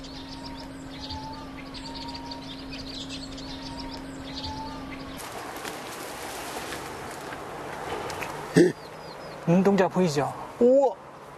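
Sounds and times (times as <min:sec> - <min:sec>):
low steady hum: 0:00.0 - 0:09.6
vinous-throated parrotbills twittering in a dense reed bed: 0:00.0 - 0:11.3
broad rustling wash: 0:05.2 - 0:08.8
speech: 0:09.5 - 0:11.0.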